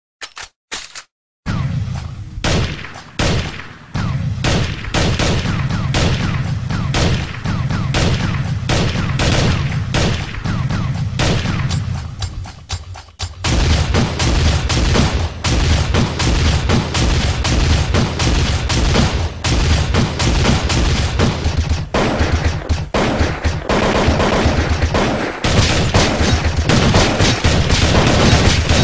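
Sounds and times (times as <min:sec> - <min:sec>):
video game gunshots: 0:01.5 - 0:12.3, 0:13.2 - 0:28.8.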